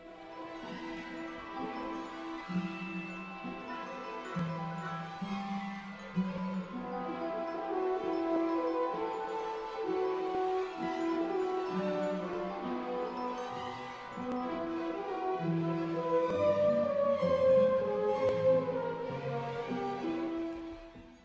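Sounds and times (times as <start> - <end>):
orchestral film score music with low strings: 0.0 - 21.2.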